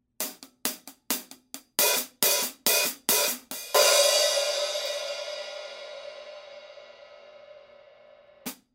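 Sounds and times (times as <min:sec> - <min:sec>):
cymbal: 0:01.8 - 0:08.5.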